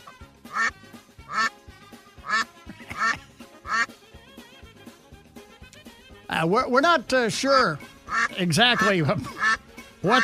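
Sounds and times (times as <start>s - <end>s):
duck quacking: 0.0s - 4.0s, 7.5s - 10.2s
speech: 6.4s - 9.4s, 10.0s - 10.2s.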